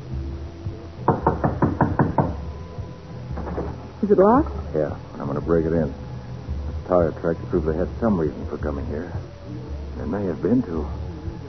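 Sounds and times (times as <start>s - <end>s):
knocking on a wooden door: 1.0s - 2.6s, 3.3s - 3.8s
speech: 4.0s - 6.0s, 6.9s - 11.0s.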